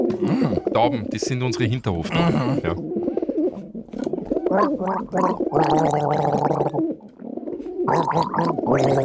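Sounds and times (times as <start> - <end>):
person gargling water: 0.1 - 0.8, 2.1 - 3.0, 4.5 - 6.8, 7.9 - 9.0
speech: 0.1 - 3.1, 4.5 - 7.1, 7.9 - 9.0.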